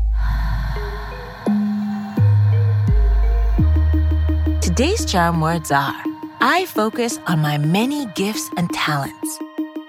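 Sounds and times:
deep breath out during a guided breathing exercise: 0.1s - 3.9s
speech: 4.8s - 9.5s.

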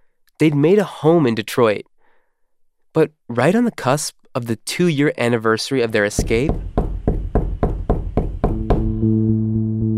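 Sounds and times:
speech: 0.4s - 1.9s, 2.9s - 6.7s
knocking on a door: 6.2s - 9.0s.

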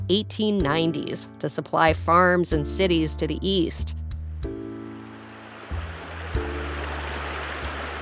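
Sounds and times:
speech: 0.1s - 4.6s
rushing of the flowing Colorado River: 5.0s - 8.0s.

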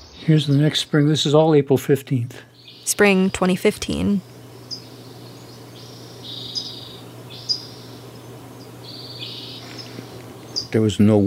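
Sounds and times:
low steady hum: 0.0s - 11.2s
speech: 0.3s - 4.3s, 10.7s - 11.2s
faint high-pitched chirps from birds in the trees: 2.5s - 11.2s.

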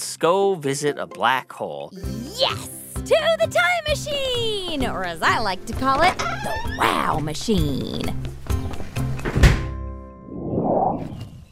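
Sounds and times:
speech: 0.2s - 8.3s
door swinging open whoosh: 9.1s - 11.5s
door latch releasing thunk: 9.2s - 9.8s.

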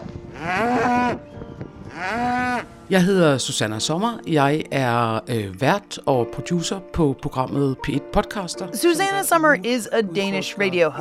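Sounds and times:
cows mooing in a field in spring: 0.3s - 1.2s, 1.9s - 2.8s
speech: 2.9s - 10.9s.

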